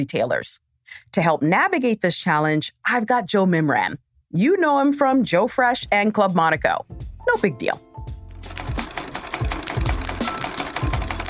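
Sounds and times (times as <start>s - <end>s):
speech: 0.0s - 8.1s
sewing machine running: 8.3s - 11.2s.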